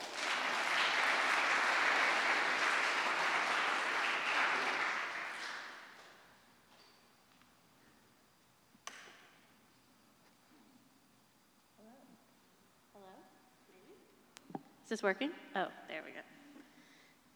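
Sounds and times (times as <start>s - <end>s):
crowd applauding: 0.0s - 6.1s
speech: 14.9s - 16.4s.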